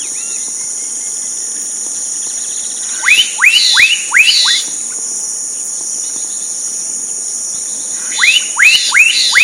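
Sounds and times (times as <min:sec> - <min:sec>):
high insect drone: 0:00.0 - 0:09.4
black-capped donacobius giving rising whistled notes in Sertão, Mongaguá, São Paulo, Brazil: 0:03.0 - 0:04.7, 0:08.0 - 0:09.4.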